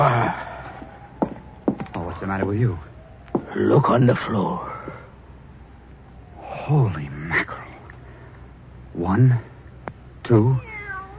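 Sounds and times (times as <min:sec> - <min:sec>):
speech: 0:02.2 - 0:02.9, 0:03.6 - 0:04.7, 0:06.7 - 0:07.4, 0:09.0 - 0:09.5, 0:10.3 - 0:10.7
cat meowing: 0:10.4 - 0:11.1.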